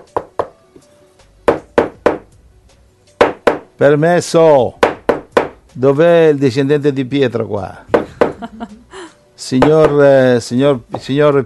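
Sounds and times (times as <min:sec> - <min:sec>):
knocking on a door: 0:00.0 - 0:00.6, 0:01.4 - 0:02.3, 0:03.2 - 0:03.7, 0:04.8 - 0:05.6, 0:07.9 - 0:08.5, 0:09.6 - 0:10.0
speech: 0:03.8 - 0:04.8, 0:05.8 - 0:08.8, 0:09.4 - 0:11.4
laughter: 0:08.0 - 0:09.1.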